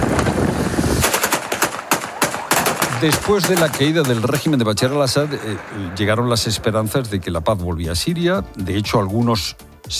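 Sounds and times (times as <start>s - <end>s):
celebratory gunfire: 1.0s - 6.9s
speech: 3.0s - 9.9s.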